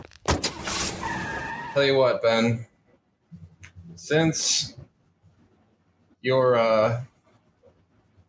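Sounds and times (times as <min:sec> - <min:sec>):
car peeling out with revving bursts and clunks: 0:00.4 - 0:02.0
speech: 0:01.8 - 0:02.7, 0:04.1 - 0:04.8, 0:06.2 - 0:07.1.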